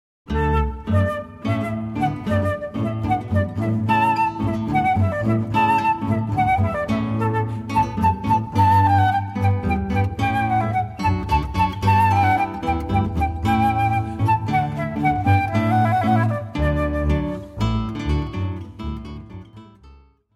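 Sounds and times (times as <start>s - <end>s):
flute playing a hornpipe: 0.3s - 18.2s
bass playing a hornpipe: 0.3s - 20.0s
guitar playing a hornpipe: 0.3s - 20.2s.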